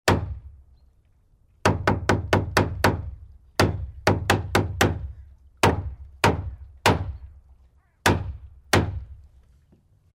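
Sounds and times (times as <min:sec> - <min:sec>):
hammering: 0:00.1 - 0:00.5, 0:01.6 - 0:07.3, 0:08.0 - 0:09.2.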